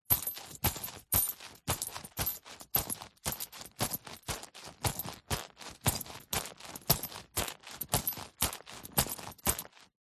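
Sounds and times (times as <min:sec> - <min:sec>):
leather handbag luggage walking movements: 0:00.1 - 0:09.9.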